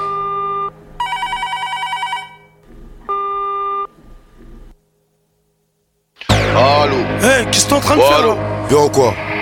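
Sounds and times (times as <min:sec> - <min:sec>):
steady electronic telephone tone while placing a call: 0:00.0 - 0:04.0
longer trilling electronic telephone ring: 0:01.0 - 0:02.6
speech: 0:06.9 - 0:09.3.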